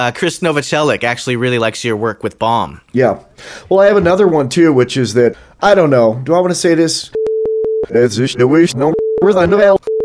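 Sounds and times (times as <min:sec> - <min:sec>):
speech: 0:00.0 - 0:07.2, 0:07.9 - 0:09.9
mid-pitched censor bleep tone: 0:07.2 - 0:07.9, 0:08.9 - 0:10.0.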